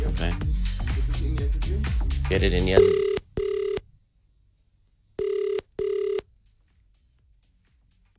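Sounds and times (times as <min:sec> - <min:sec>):
hiss: 0:00.0 - 0:08.1
speech: 0:02.3 - 0:03.0
telephone ringing on the phone line: 0:02.8 - 0:03.8, 0:05.2 - 0:06.3.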